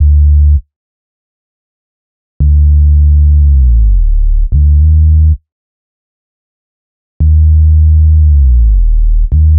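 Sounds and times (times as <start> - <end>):
hip hop exotica bass in D minor: 2.4 - 5.4, 7.2 - 9.5.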